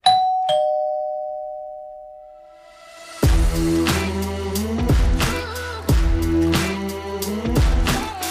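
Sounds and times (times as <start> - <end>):
two-note doorbell ding-dong chime: 0.0 - 2.6
loud rhythmic music with heavy beats: 3.2 - 8.2.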